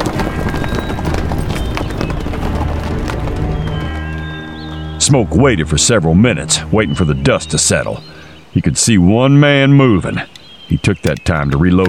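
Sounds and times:
horses galloping hard: 0:00.0 - 0:06.7
speech: 0:05.1 - 0:11.8.

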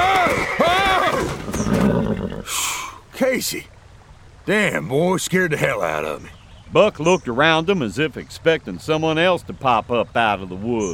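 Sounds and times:
rearing horse whinnying: 0:00.0 - 0:03.0
speech: 0:03.2 - 0:03.8, 0:04.4 - 0:10.9.

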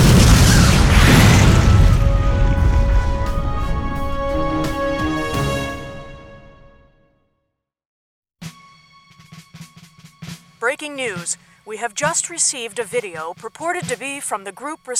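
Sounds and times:
huge explosion with rumbling ringing decay: 0:00.0 - 0:04.8
speech: 0:10.8 - 0:14.9.

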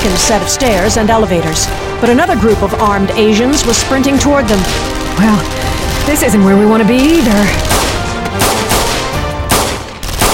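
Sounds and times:
speech: 0:00.0 - 0:07.9
loud automatic gunfire in a hallway: 0:03.6 - 0:10.3.

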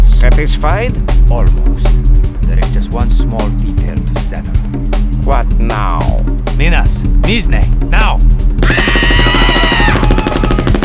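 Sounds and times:
speech: 0:00.2 - 0:09.4
barrage of 9mm gunfire: 0:08.8 - 0:10.8.

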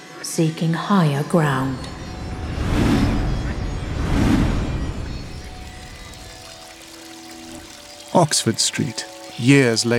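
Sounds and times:
speech: 0:00.2 - 0:02.0, 0:08.2 - 0:09.9
deep low rumble: 0:01.6 - 0:06.4
water rushing and flooding the streets of Oxford Street: 0:01.7 - 0:09.9.

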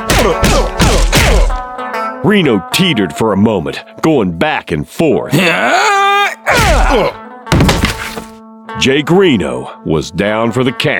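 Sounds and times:
heavy punches landing on a face: 0:00.0 - 0:01.7, 0:06.5 - 0:08.3
speech: 0:00.2 - 0:01.2, 0:02.2 - 0:07.2, 0:08.8 - 0:10.9
grunts: 0:05.3 - 0:07.2.

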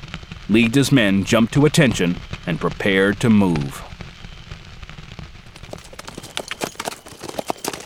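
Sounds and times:
speech: 0:00.5 - 0:03.9
horse hooves pounding at a fast riding pace: 0:05.4 - 0:07.8.

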